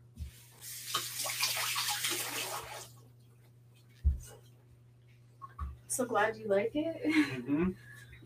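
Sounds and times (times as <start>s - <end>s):
hands rinsed under running tap water: 0.6s - 3.0s
speech: 6.0s - 7.9s.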